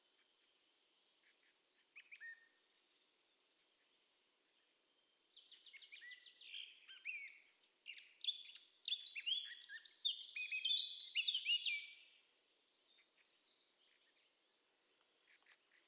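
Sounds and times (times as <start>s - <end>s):
Eurasian blackcap Sylvia atricapilla song with soft notes and rich warble: 6.4s - 11.9s.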